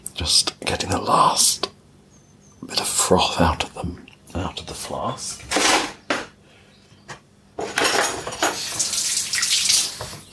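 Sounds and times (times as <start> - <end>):
speech: 0.2 - 1.7, 2.6 - 5.9
running tap water rinsing hands: 8.4 - 10.2.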